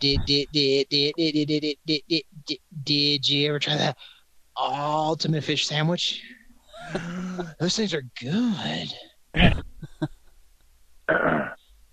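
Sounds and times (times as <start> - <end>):
speech: 0.0 - 10.2, 11.1 - 11.4
person clearing their throat: 6.8 - 7.6, 9.4 - 9.8, 11.1 - 11.6.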